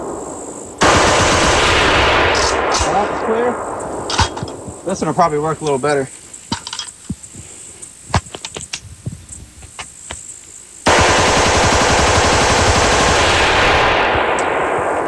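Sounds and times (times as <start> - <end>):
semi-automatic rifle firing rapidly without a bump fire stock: 0.8 - 4.3, 10.9 - 15.0
speech: 3.3 - 3.7, 4.9 - 6.2.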